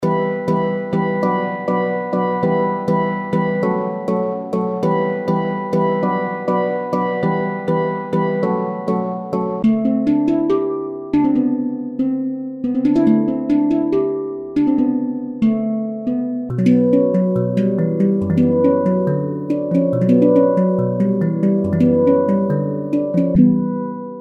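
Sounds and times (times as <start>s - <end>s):
handpan melodies: 0.0s - 24.2s.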